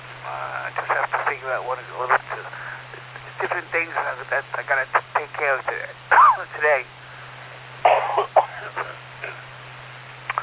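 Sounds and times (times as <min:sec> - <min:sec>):
faint steady hum: 0:00.0 - 0:10.4
speech: 0:01.5 - 0:02.6, 0:03.5 - 0:07.0
person with congestion coughing: 0:07.9 - 0:09.4.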